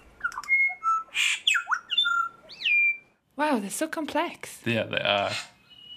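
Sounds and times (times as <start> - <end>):
bird song of whistles, buzzy squawks and chirps: 0.0 - 3.2, 5.3 - 5.9
speech: 3.4 - 5.5.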